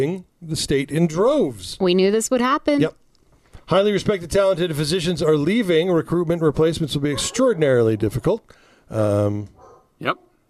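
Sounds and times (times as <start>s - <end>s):
speech: 0.0s - 3.0s, 3.7s - 10.3s
dog yipping: 7.1s - 8.1s, 9.6s - 10.3s
dogs barking: 7.1s - 8.2s, 9.6s - 10.4s.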